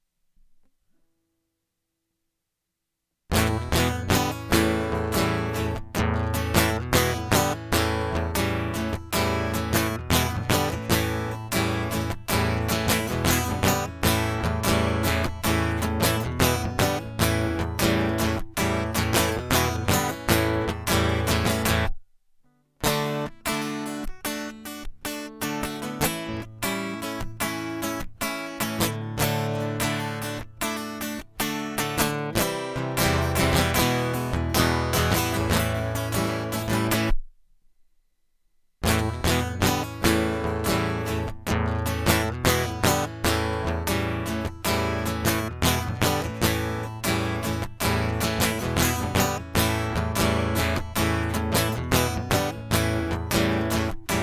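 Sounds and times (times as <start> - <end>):
guitar loop: 3.3 - 22.0, 22.8 - 37.2, 38.8 - 54.2.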